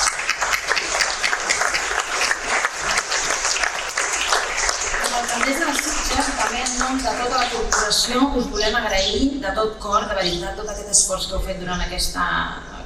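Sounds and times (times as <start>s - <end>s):
sustained applause from a large audience: 0.0s - 8.0s
speech: 6.7s - 12.7s.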